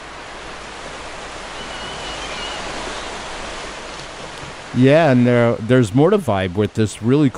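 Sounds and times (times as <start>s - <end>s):
ocean surf: 0.0s - 7.3s
speech: 4.8s - 7.3s.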